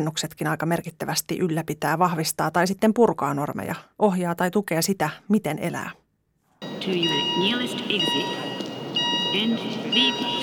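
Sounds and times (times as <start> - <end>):
speech: 0.0 - 6.0, 6.8 - 8.4, 9.3 - 10.4
hotel fire alarm ringing with piercing high tones: 6.6 - 10.4
murmur of people talking and moving around: 6.8 - 10.4.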